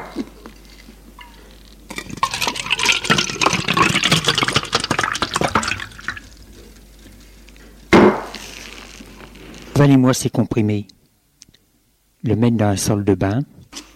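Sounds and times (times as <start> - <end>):
water poured into a glass in a bedroom: 1.9 - 6.4
speech: 9.8 - 11.0, 12.2 - 13.6.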